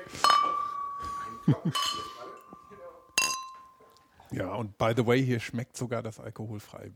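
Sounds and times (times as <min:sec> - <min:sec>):
beer glasses clinking in a toast: 0:00.0 - 0:04.0
people laughing: 0:01.0 - 0:02.4
speech: 0:01.5 - 0:02.1, 0:04.3 - 0:06.9.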